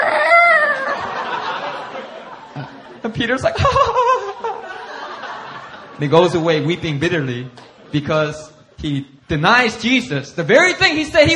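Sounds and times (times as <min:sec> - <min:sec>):
human voice imitating a rooster's crow: 0:00.0 - 0:01.0
laughter: 0:00.5 - 0:06.7
speech: 0:03.0 - 0:04.1, 0:06.0 - 0:11.3.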